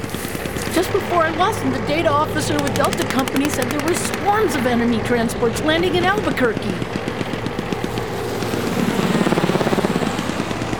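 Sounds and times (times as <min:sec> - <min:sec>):
helicopter rotor blades chopping: 0:00.0 - 0:10.7
speech: 0:00.8 - 0:07.0.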